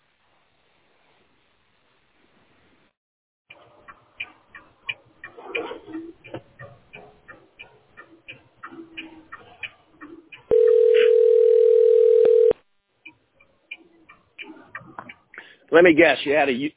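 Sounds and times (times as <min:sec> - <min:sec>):
loud steady landline phone tone during incoming call: 0:10.5 - 0:12.6
speech: 0:15.8 - 0:16.7.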